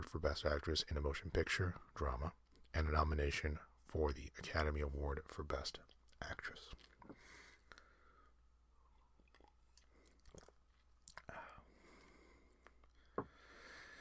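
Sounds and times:
speech: 0.0s - 7.4s
person sipping tea: 6.7s - 13.4s.

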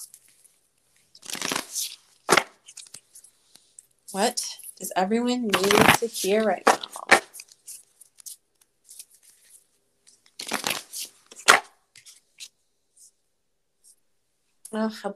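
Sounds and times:
oracle cards being shuffled: 1.2s - 3.7s, 5.5s - 12.5s
speech: 4.1s - 6.8s, 14.8s - 15.1s.

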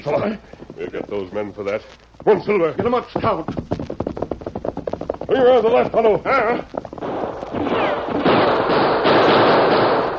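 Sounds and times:
speech: 0.0s - 3.8s, 5.3s - 6.8s
gunfire in a shootout in an old-time Western radio drama: 7.0s - 10.1s.

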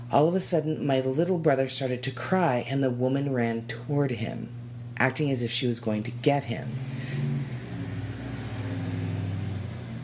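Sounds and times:
speech: 0.1s - 7.2s
heavy truck engine revving: 6.5s - 10.0s.

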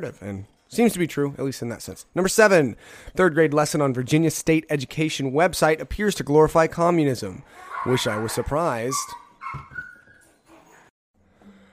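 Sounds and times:
speech: 0.0s - 9.8s
small dogs whimpering and yipping while playing: 7.6s - 10.9s.

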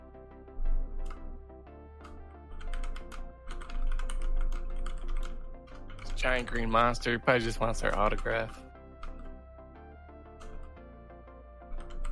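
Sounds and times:
typing on a computer keyboard: 2.0s - 6.8s, 7.9s - 9.3s, 11.7s - 12.0s
speech: 6.2s - 8.6s.

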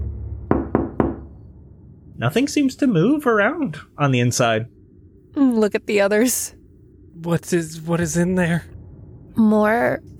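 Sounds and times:
low hum: 0.0s - 10.1s
knocking on a glass window: 0.5s - 1.3s
speech: 2.2s - 6.6s, 7.2s - 8.8s, 9.4s - 10.1s.

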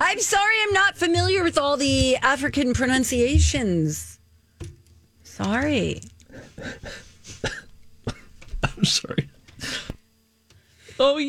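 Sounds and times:
speech: 0.1s - 4.7s, 5.4s - 7.6s, 8.8s - 9.8s, 11.0s - 11.2s
throaty coughs: 6.3s - 9.9s.

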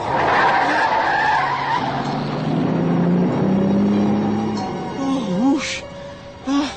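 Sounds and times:
car tires skidding while swerving past an oncoming truck on Interstate 70: 0.0s - 5.0s
roar of road and car engine: 0.0s - 6.7s.

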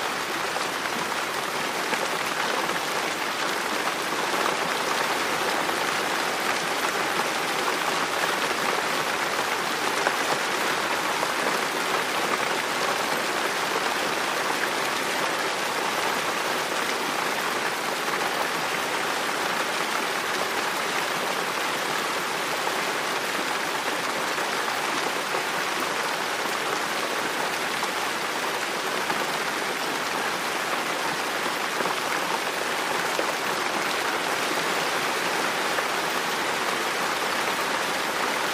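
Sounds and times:
rain beating against a window: 0.1s - 38.5s.

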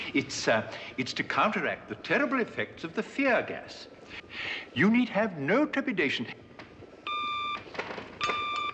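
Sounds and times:
speech: 0.1s - 6.4s
half-second electronic beeps: 7.1s - 7.6s, 8.2s - 8.7s.

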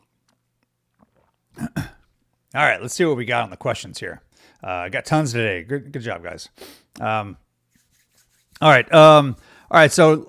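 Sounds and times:
slurping and swallowing hot coffee: 0.3s - 2.1s
speech: 2.5s - 7.4s, 8.6s - 10.2s.

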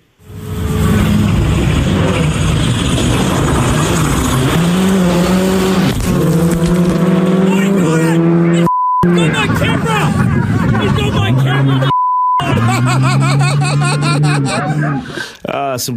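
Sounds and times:
gravelly road noise under a rally car: 0.0s - 15.5s
rally car engine revving on a stage at Rally Hawke's Bay: 0.1s - 15.2s
laughter: 9.4s - 15.4s.

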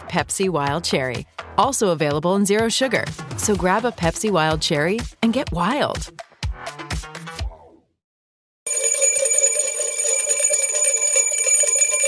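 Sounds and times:
speech: 0.1s - 6.2s
bell ringing: 8.7s - 12.0s.

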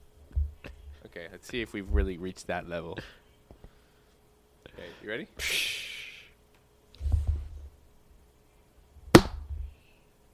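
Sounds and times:
speech: 1.2s - 3.2s, 4.8s - 5.7s
hand slapping a microphone: 9.1s - 9.7s.

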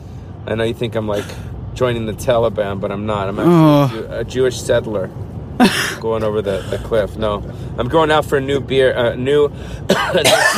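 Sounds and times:
speech: 0.5s - 10.5s
man coughing: 5.6s - 6.0s, 9.8s - 10.5s.

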